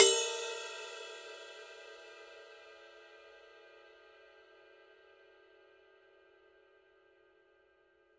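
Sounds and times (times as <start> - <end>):
20-inch ride cymbal bell: 0.0 - 1.4.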